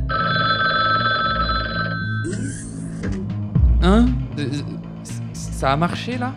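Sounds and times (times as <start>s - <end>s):
telephone ringing with bright electronic trill: 0.1s - 2.3s
speech: 3.8s - 4.8s, 5.6s - 6.3s.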